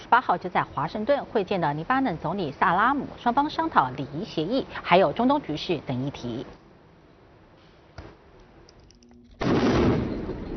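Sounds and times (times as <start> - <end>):
speech: 0.1 - 6.6
loud explosion after bombing with roaring rumble: 9.4 - 10.5
sharp bang: 9.4 - 10.5.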